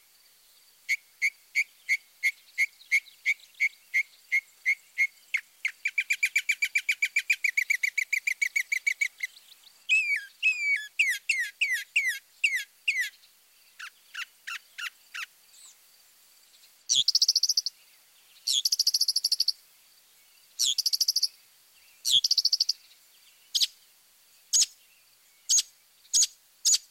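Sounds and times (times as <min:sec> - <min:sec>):
mockingbird singing: 0:00.9 - 0:15.8, 0:16.9 - 0:17.8, 0:18.4 - 0:19.6, 0:20.6 - 0:21.3, 0:22.0 - 0:22.8, 0:25.5 - 0:26.9.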